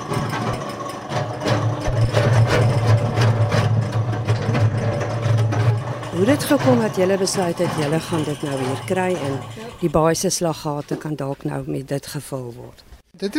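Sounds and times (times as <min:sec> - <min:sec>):
mixing machine engine starting and running: 0:00.0 - 0:10.3
clattering mechanical noise: 0:00.0 - 0:11.1
speech: 0:06.3 - 0:13.3.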